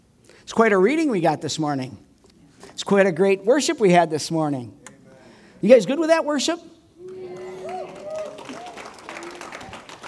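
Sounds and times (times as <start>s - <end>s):
speech: 0.5s - 2.1s, 2.8s - 4.8s, 5.6s - 6.8s
light polite golf clap from a small church audience: 7.0s - 10.0s.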